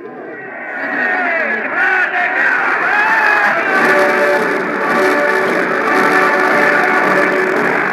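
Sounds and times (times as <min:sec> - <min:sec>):
large hysterical crowd cheering and shouting for arriving troops: 0:00.0 - 0:07.9
scattered yells from the crowd: 0:00.2 - 0:03.8.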